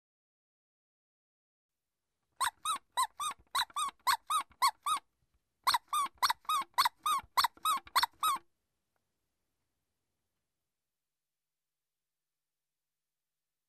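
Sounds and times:
toy squeaks: 2.4 - 8.4.

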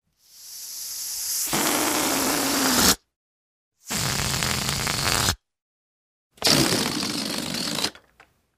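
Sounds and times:
air escaping from a balloon being deflated: 0.2 - 3.0, 3.8 - 5.4, 6.4 - 8.0.

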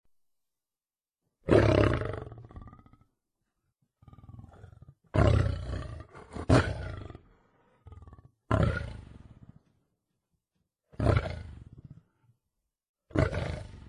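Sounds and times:
lion giving deep rasping roars: 1.4 - 3.1, 4.0 - 9.8, 10.9 - 12.2, 13.1 - 13.8.

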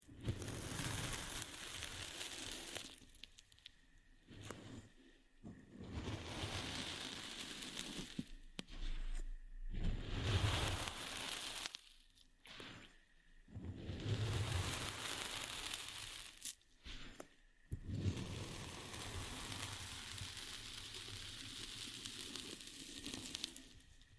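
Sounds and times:
cutting sand: 0.1 - 3.2, 5.6 - 24.0.

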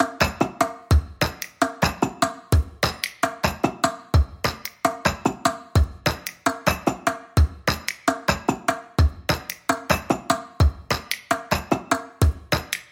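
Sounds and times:
percussion beat: 0.0 - 12.9.

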